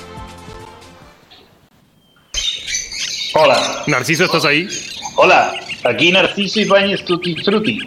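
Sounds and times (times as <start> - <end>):
birds squawking with harsh nasal calls: 2.0 - 7.8
speech: 3.4 - 7.8.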